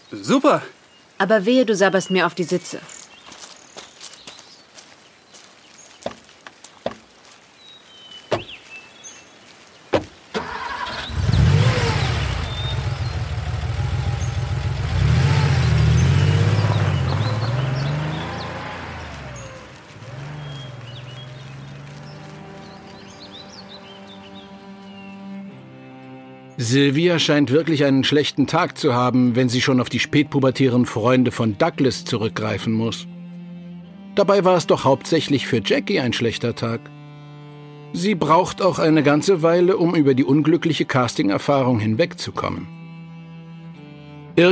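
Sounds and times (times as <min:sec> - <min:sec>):
speech: 0:00.1 - 0:03.0, 0:26.9 - 0:33.2, 0:34.2 - 0:37.0, 0:37.9 - 0:42.8, 0:44.4 - 0:44.5
footsteps: 0:03.0 - 0:07.6, 0:08.3 - 0:08.8, 0:09.5 - 0:10.2, 0:19.2 - 0:23.6
car engine cranking, starting and pulling away: 0:10.3 - 0:24.4.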